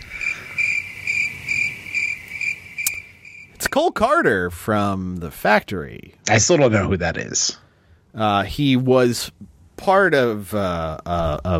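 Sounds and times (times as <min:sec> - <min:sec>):
crickets chirping: 0:00.0 - 0:04.3
hiss: 0:00.0 - 0:11.5
speech: 0:03.7 - 0:07.6, 0:08.2 - 0:11.5.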